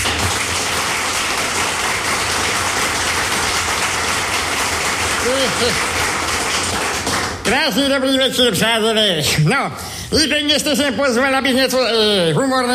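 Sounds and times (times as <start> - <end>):
crowd applauding a performer: 0.0 - 7.9
speech: 5.4 - 5.9, 7.5 - 12.7.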